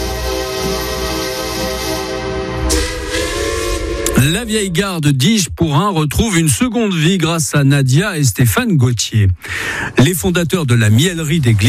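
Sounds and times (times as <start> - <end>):
whistle-like tones of a train at a station: 0.0 - 4.8
heavy rumble of a train arriving at a station: 0.0 - 7.1, 9.6 - 11.6
burst of hiss from a train: 0.2 - 4.2
speech: 4.2 - 11.6.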